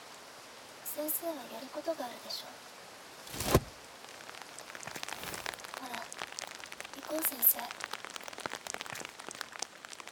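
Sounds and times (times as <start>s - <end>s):
rain falling: 0.0s - 10.1s
speech: 1.0s - 3.5s, 7.0s - 8.0s
brief louder splash or thump: 3.3s - 3.8s.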